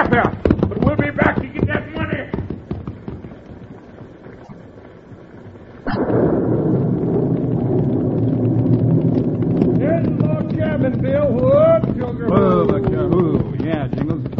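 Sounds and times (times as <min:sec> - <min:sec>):
horses galloping away: 0:00.0 - 0:14.3
voices or cries: 0:11.2 - 0:13.5.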